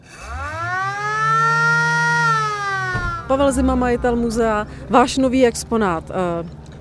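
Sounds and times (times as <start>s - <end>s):
1955 Škoda 1200 ambulance siren winding up: 0.0s - 5.1s
speech: 3.3s - 6.6s.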